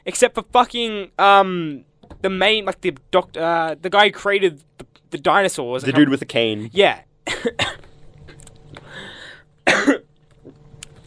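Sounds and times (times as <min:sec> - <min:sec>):
speech: 0:00.0 - 0:07.8
worked up person coughing: 0:07.2 - 0:08.0, 0:09.6 - 0:10.1
catch of breath: 0:08.8 - 0:09.4.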